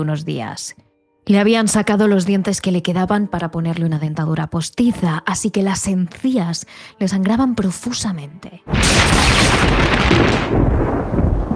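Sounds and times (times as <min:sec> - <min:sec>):
speech: 0:00.0 - 0:11.2
loud thunderclap from a strong storm rolling into a deep rumble: 0:08.7 - 0:11.5.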